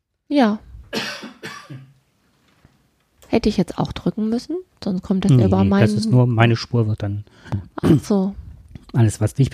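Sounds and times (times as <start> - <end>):
speech: 0.3 - 1.8, 3.4 - 9.5
harsh coughs: 0.9 - 2.0, 7.8 - 8.1.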